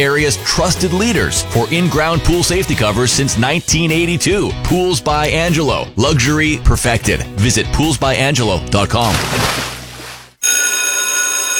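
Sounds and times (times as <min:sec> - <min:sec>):
speech: 0:00.0 - 0:09.7
school bell ringing: 0:10.4 - 0:11.5.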